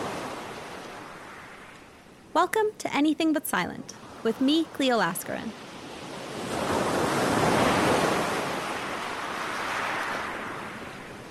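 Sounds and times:
ocean waves breaking on the shore of Shale Bay on the Isle of Wight: 0.0 - 11.2
speech: 2.4 - 5.6.

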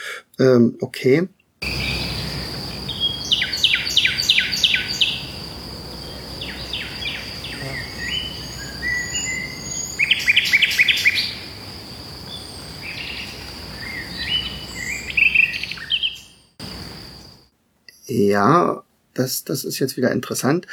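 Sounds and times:
speech: 0.4 - 1.4, 18.1 - 20.7
nightingale singing broken-off strophes: 1.6 - 17.4
high insect or cricket drone outdoors at night: 1.6 - 17.5.

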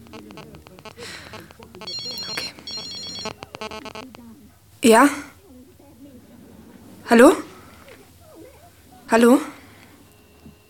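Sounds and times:
voices: 0.0 - 10.6
mobile phone ringtone ringing from a handbag in an apartment: 0.8 - 4.2
speech: 3.6 - 5.3, 7.1 - 7.4, 9.1 - 9.5.

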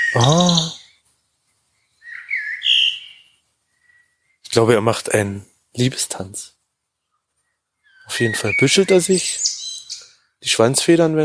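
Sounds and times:
whistled bird call: 0.0 - 1.0, 1.9 - 4.4, 7.8 - 10.2
speech: 0.1 - 0.8, 4.6 - 6.6, 8.1 - 9.5, 10.4 - 11.2.

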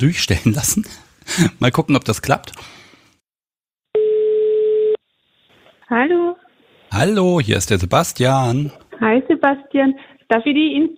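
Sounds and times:
speech: 0.0 - 2.6, 5.9 - 10.9
telephone line tone after dialing an Austrian number: 4.0 - 5.0.

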